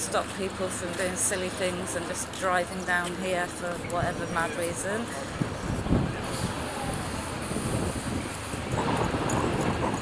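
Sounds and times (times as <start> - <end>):
speech: 0.1 - 5.5
strong wind buffeting the microphone: 3.9 - 9.9.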